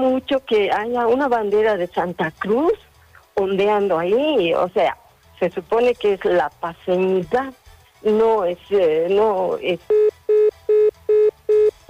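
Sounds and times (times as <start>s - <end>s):
speech: 0.2s - 10.1s
disconnected phone line beeps: 9.9s - 11.8s.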